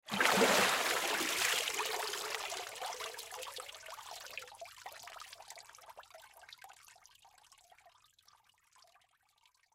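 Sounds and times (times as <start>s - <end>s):
water splash: 0.0s - 2.3s.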